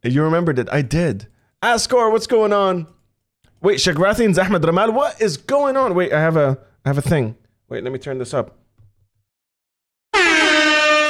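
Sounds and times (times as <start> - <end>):
speech: 0.0 - 3.0, 3.6 - 8.6
DJ air horn sound effect: 10.1 - 11.0.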